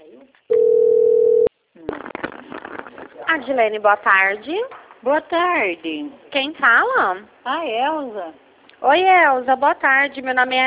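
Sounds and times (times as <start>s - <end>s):
telephone dial tone after a dropped call: 0.5s - 1.5s
speech: 3.3s - 10.6s.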